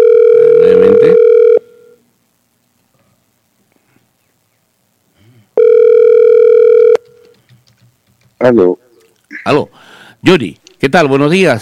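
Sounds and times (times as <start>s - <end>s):
loud steady buzzy telephone line tone: 0.0s - 2.0s, 5.6s - 7.2s
speech: 8.5s - 8.8s, 9.5s - 11.6s.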